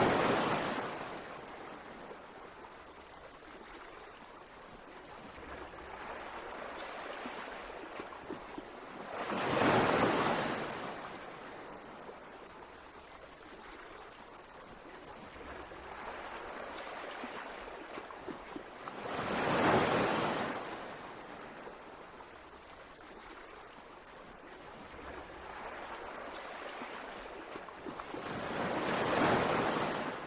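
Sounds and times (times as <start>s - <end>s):
ocean waves crashing: 0.0s - 1.5s, 5.4s - 11.5s, 15.4s - 21.4s, 24.9s - 30.2s
soft steady wash of surf and receding water: 0.0s - 30.2s.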